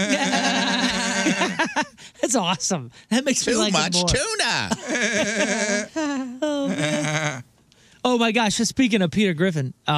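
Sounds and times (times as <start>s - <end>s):
sheep-like wavering bleat: 0.0s - 1.6s, 4.8s - 6.0s, 6.6s - 7.5s
laughter: 0.0s - 2.0s, 4.6s - 7.3s
speech: 1.6s - 9.9s.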